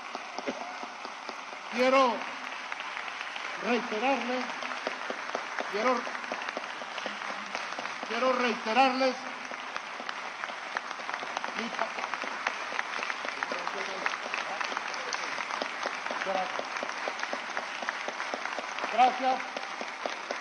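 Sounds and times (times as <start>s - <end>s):
audience applause after a Spanish-language political speech: 0.0s - 20.3s
speech: 1.7s - 2.4s, 3.6s - 4.6s, 5.7s - 6.2s, 8.1s - 9.3s, 11.6s - 12.1s, 16.3s - 16.8s, 19.0s - 19.6s.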